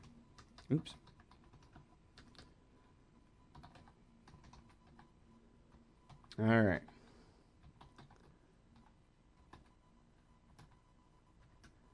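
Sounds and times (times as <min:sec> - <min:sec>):
typing a tweet on a computer keyboard: 0:00.4 - 0:02.5, 0:03.5 - 0:05.1, 0:07.6 - 0:09.8, 0:10.5 - 0:10.8
speech: 0:00.7 - 0:01.0, 0:06.4 - 0:06.9.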